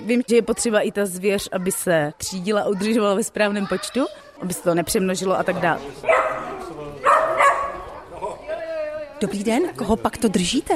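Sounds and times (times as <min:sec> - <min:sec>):
speech: 0:00.1 - 0:06.5, 0:09.2 - 0:10.7
small smooth-haired dachshund hunting dog barking and yelping: 0:06.1 - 0:07.9.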